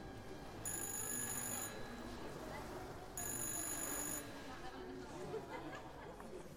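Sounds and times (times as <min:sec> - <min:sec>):
telephone ringing in bright trilling bursts: 0:00.6 - 0:01.9, 0:03.2 - 0:04.3
overlapping chatter in a crowded room: 0:01.4 - 0:06.5.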